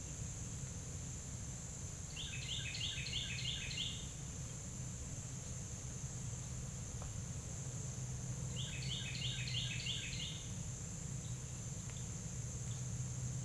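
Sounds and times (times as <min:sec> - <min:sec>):
high insect drone: 0:00.0 - 0:13.4
Carolina wren song: 0:02.0 - 0:04.6, 0:08.4 - 0:13.4.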